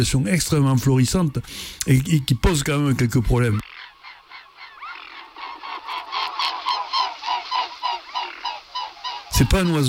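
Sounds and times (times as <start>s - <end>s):
speech: 0.0s - 3.6s, 9.4s - 9.8s
mute swan calling in rapid nasal honks: 3.6s - 9.8s.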